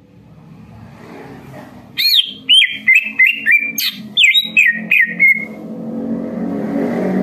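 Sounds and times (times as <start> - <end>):
greater green leafbird singing bright whistled notes: 2.0 - 5.6.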